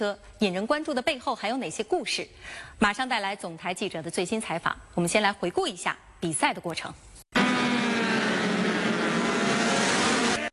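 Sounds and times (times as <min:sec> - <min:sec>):
speech: 0:00.0 - 0:07.1
superbike racing motorcycle engines roaring at high revs in Portugal: 0:07.4 - 0:10.5.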